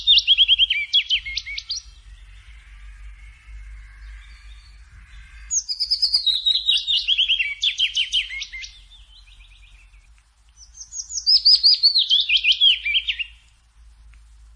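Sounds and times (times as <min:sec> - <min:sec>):
faint low hum: 0:00.0 - 0:14.5
willow warbler singing in a forest: 0:00.0 - 0:14.5.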